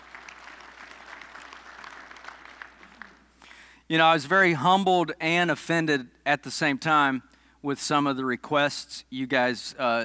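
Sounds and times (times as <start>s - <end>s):
audience applauding: 0.0s - 3.4s
speech: 3.9s - 10.0s.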